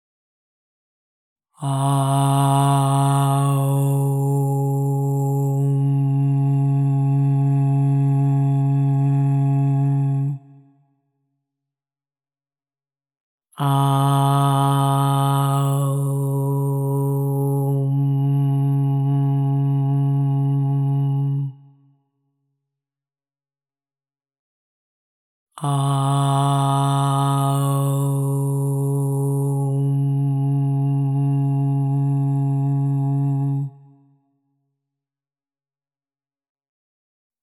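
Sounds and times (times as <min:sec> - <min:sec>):
OM 136.1 Hz tone with reverb: 0:01.6 - 0:10.5, 0:13.6 - 0:21.6, 0:25.6 - 0:33.9.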